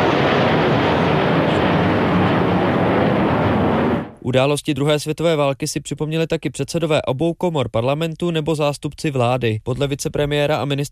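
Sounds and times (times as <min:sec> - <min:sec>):
military aircraft passing overhead: 0:00.0 - 0:04.2
speech: 0:04.3 - 0:10.9.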